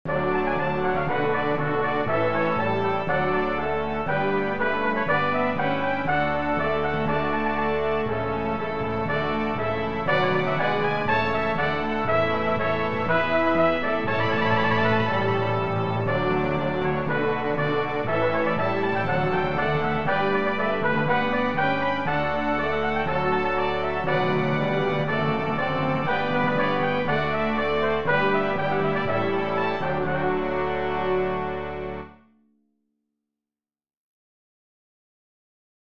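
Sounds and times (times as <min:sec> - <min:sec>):
brass playing a hymn: 0:00.1 - 0:32.2
piccolo: 0:00.1 - 0:32.2.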